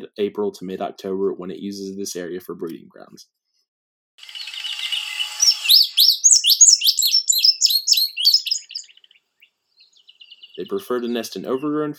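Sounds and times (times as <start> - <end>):
speech: 0.2 - 3.4, 10.6 - 11.9
indigo bunting singing: 4.2 - 11.9.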